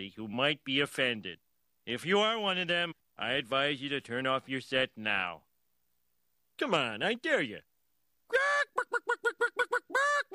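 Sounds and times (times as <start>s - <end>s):
speech: 0.0s - 5.5s, 6.6s - 7.7s, 8.3s - 9.0s
chicken squawking and clucking: 8.3s - 10.3s.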